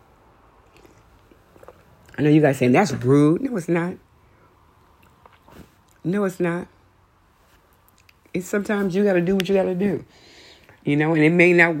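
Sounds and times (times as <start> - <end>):
low hiss: 0.0 - 11.7
person sipping coffee: 0.6 - 2.2, 4.9 - 6.0
speech: 2.2 - 4.1, 6.0 - 6.8, 8.4 - 11.7.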